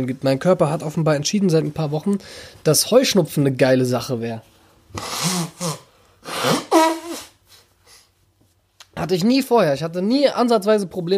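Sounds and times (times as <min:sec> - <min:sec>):
speech: 0:00.0 - 0:05.8, 0:09.0 - 0:11.1
faint sniffs: 0:04.6 - 0:08.3
nose blowing into a tissue: 0:04.9 - 0:08.1.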